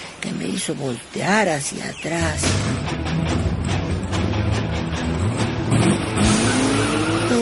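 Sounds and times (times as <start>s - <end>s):
speech: 0.4s - 3.5s
sports car engine roaring at high speed in a forest: 2.9s - 7.4s
tire squeal: 5.7s - 7.4s.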